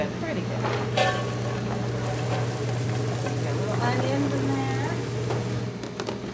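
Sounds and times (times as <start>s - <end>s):
chopped onions poured into a hot pan sizzling: 0.8s - 5.8s.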